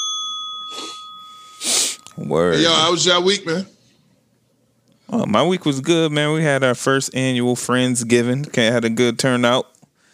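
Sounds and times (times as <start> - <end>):
notification bell ding: 0.0 - 2.2
speech: 2.2 - 3.8, 5.1 - 9.7.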